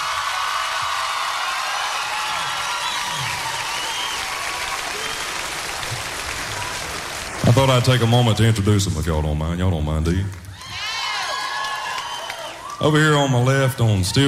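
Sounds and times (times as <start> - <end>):
faint whoops from concert audience: 0.0 - 5.4, 10.5 - 12.8
concert audience applauding: 0.0 - 8.8, 10.5 - 13.5
speech: 7.5 - 10.4, 12.8 - 14.2.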